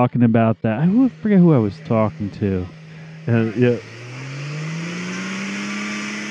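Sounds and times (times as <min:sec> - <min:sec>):
short vocal bursts: 0:00.0 - 0:03.8
speech: 0:00.0 - 0:04.0
off-road Jeep engine revving under strain: 0:00.0 - 0:06.2.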